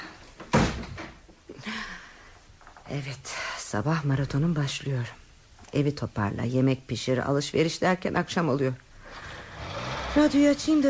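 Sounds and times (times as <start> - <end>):
door being shut at home thud: 0.5 - 1.2
speech: 2.9 - 8.9, 10.1 - 10.8.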